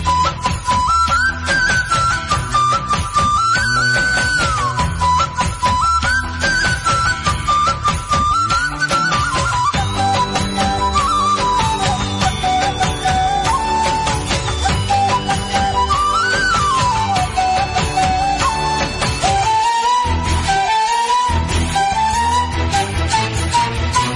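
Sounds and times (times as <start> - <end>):
Malayalam flute ringtone: 0.0 - 24.1.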